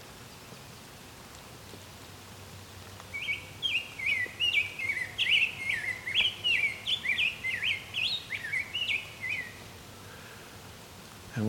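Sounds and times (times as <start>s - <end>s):
rose-breasted grosbeak singing a warble: 3.1s - 9.6s.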